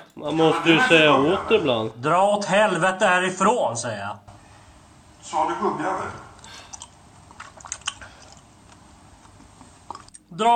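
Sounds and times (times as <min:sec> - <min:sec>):
laughter: 0:00.2 - 0:02.0
speech: 0:00.2 - 0:04.3, 0:05.2 - 0:06.3, 0:10.3 - 0:10.5
wet gum chewing with sticky smacks: 0:06.4 - 0:10.3.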